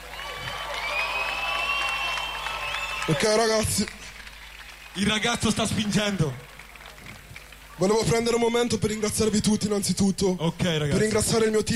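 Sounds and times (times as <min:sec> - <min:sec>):
crowd clapping and cheering for a performer at a live show: 0:00.0 - 0:08.1
speech: 0:03.1 - 0:04.0, 0:05.0 - 0:06.5, 0:07.8 - 0:11.7.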